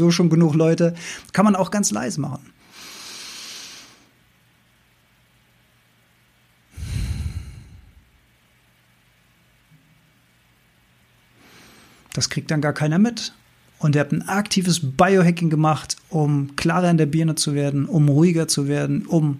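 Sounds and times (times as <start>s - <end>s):
speech: 0.0s - 2.6s, 12.2s - 19.3s
slow deliberate breathing exercise inhales and exhales: 2.6s - 4.1s, 6.7s - 8.1s, 11.4s - 12.1s.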